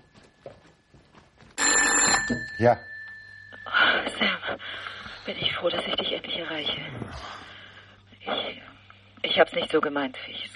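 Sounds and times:
telephone bell ringing in a living room: 0:01.6 - 0:05.1
speech: 0:02.3 - 0:02.9, 0:05.3 - 0:07.4, 0:08.2 - 0:08.7, 0:09.4 - 0:10.5.

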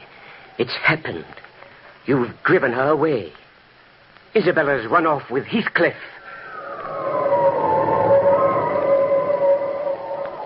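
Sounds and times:
speech: 0:00.6 - 0:03.4, 0:04.3 - 0:06.2
howling winter wind: 0:06.2 - 0:10.4.

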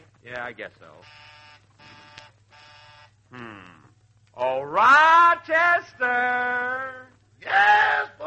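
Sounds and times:
speech: 0:00.2 - 0:02.0, 0:03.3 - 0:03.8, 0:04.4 - 0:08.2
doorbell buzzer ringing: 0:01.0 - 0:03.1.

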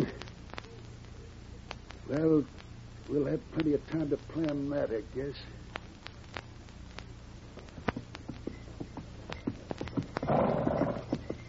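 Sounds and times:
speech: 0:02.1 - 0:05.7
horse hooves clip-clopping along a trail: 0:07.6 - 0:11.4.

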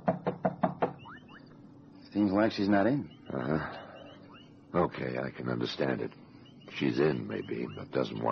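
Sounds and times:
firm knocking on a wooden door: 0:00.0 - 0:01.0
speech: 0:02.2 - 0:03.8, 0:04.7 - 0:08.3.

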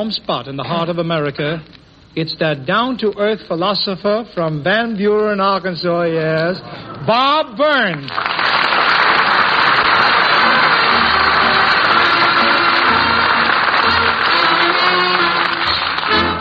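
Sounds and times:
speech: 0:00.0 - 0:08.9
large audience clapping: 0:07.9 - 0:16.3.

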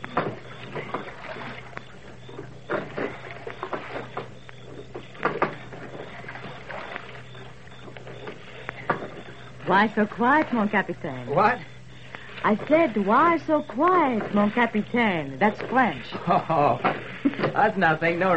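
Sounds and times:
wooden knocks against a small boat: 0:00.0 - 0:09.4, 0:13.8 - 0:18.3
oars creaking and splashing rowing a rowboat on a lake: 0:00.0 - 0:18.3
water lapping on a lake: 0:00.0 - 0:18.3
speech: 0:09.7 - 0:11.7, 0:12.4 - 0:17.0, 0:17.6 - 0:18.3.

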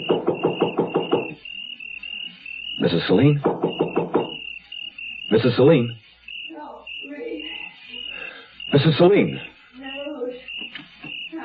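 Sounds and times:
knocking on a wooden front door: 0:00.0 - 0:01.4, 0:03.4 - 0:04.4
speech: 0:02.8 - 0:03.7, 0:05.3 - 0:06.0, 0:08.8 - 0:09.5.

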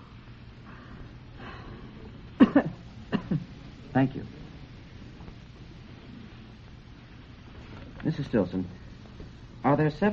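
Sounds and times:
woman coughing: 0:02.4 - 0:03.6
speech: 0:04.0 - 0:04.4, 0:08.2 - 0:08.8, 0:09.6 - 0:10.1.

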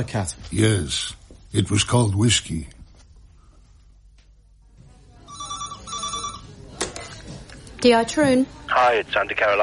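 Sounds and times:
speech: 0:00.0 - 0:02.8, 0:07.8 - 0:09.6
telephone ringing tone on an outgoing call from a mobile phone: 0:05.3 - 0:06.6.

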